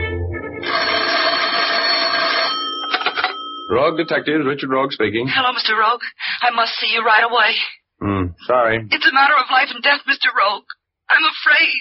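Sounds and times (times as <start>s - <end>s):
telephone bell ringing with metallic jangle: 0.4s - 4.4s
speech: 3.7s - 11.8s.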